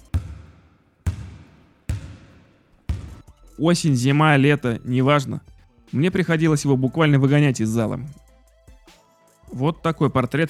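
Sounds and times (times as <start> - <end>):
basketball bouncing on gym floor: 0.0 - 3.3
speech: 3.6 - 8.2, 9.5 - 10.4.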